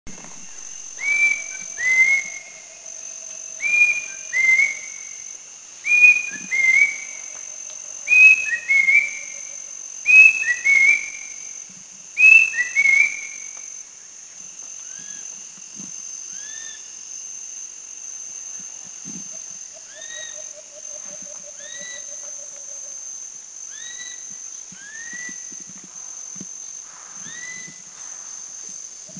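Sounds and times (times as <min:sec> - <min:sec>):
Rusty-breasted Cuckoo calling in the Philippines: 0:00.2 - 0:11.4, 0:12.2 - 0:13.6, 0:19.7 - 0:23.0.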